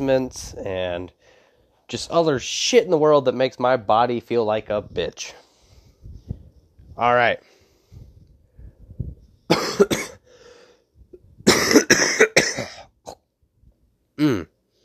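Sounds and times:
speech: 0.0 - 5.4, 7.0 - 7.5, 9.8 - 10.0, 14.2 - 14.5
harsh hacking coughs: 9.5 - 10.2, 11.4 - 13.2, 14.2 - 14.5.

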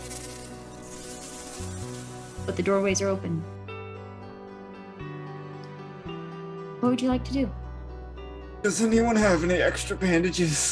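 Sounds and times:
flies buzzing: 0.0 - 3.6
speech: 2.5 - 3.6, 6.8 - 7.6, 8.6 - 10.7.

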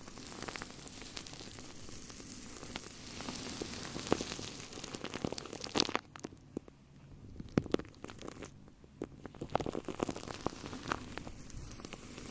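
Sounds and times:
shaving cream bubbles popping and squelching on a microphone: 0.0 - 12.2.

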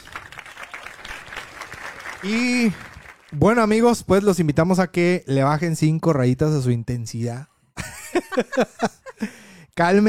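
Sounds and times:
applause from a small group: 0.0 - 3.8
speech: 2.2 - 7.5, 8.1 - 10.0
laughter: 7.8 - 9.4.

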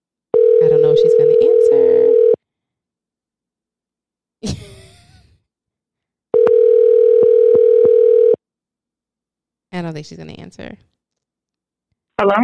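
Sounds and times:
outgoing call ringback tone: 0.3 - 2.4, 6.3 - 8.4
speech: 9.8 - 11.0, 12.2 - 12.4.

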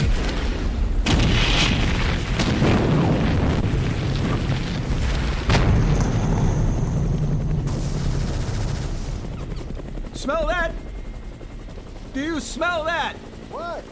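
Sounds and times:
sharp blast cracks: 0.0 - 6.7
napalm bombing explosions striking a tree line in a war zone: 0.0 - 9.4
speech: 12.2 - 13.9.

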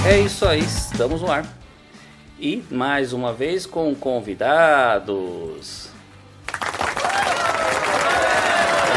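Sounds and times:
speech: 0.1 - 1.6, 2.4 - 5.9
crowd applause: 6.5 - 8.9.

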